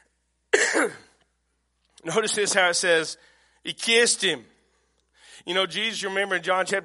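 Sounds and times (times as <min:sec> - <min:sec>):
person coughing: 0:00.5 - 0:01.2
speech: 0:00.8 - 0:01.1, 0:02.0 - 0:04.5, 0:05.4 - 0:06.8.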